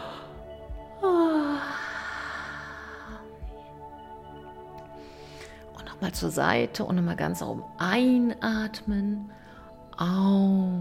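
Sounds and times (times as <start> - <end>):
drawn-out yawn: 1.0 - 2.7
speech: 6.0 - 9.4, 10.0 - 10.7.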